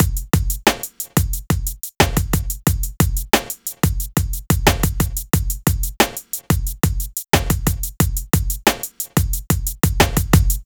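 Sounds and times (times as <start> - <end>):
latin drum loop: 0.0 - 10.6.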